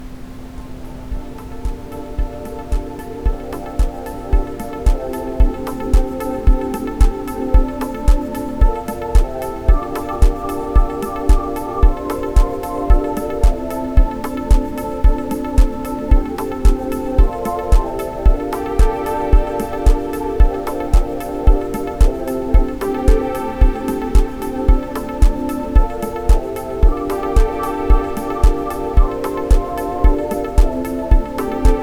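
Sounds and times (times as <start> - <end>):
ambient sound for chakras: 0.0 - 31.8.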